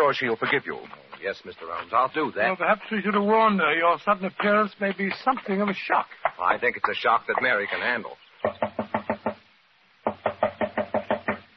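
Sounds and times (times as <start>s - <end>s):
speech: 0.1s - 8.6s
firm rapid knocking on a locked wooden door: 8.4s - 11.5s.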